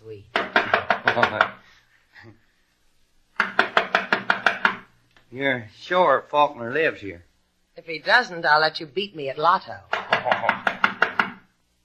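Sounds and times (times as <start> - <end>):
firm rapid knocking on a door: 0.3 - 1.6, 3.4 - 4.9, 9.9 - 11.5
speech: 5.3 - 10.8.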